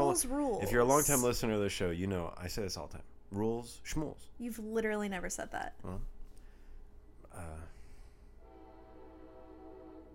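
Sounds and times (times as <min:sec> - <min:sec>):
speech: 0:00.2 - 0:06.2, 0:07.4 - 0:07.8
train horn: 0:08.4 - 0:10.1.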